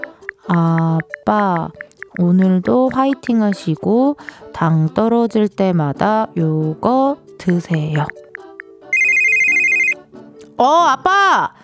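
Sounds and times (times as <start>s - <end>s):
soft music: 0.0s - 11.6s
speech: 0.5s - 8.2s, 10.6s - 11.6s
mobile phone ringtone for an incoming call: 8.9s - 10.0s.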